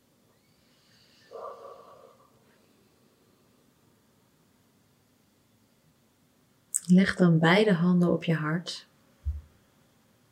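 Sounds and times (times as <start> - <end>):
slow breath through the nose during calm breathing practice: 0.5 - 3.5
speech: 6.9 - 8.9.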